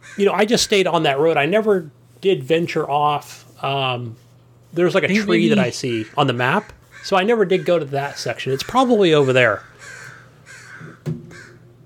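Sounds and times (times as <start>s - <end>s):
crows cawing outside: 0.0s - 0.3s, 5.8s - 11.7s
speech: 0.2s - 9.7s.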